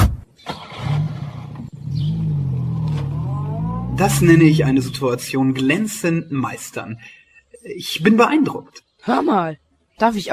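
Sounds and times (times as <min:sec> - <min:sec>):
car engine revving and pulling away: 0:00.4 - 0:06.8
speech: 0:04.0 - 0:10.3.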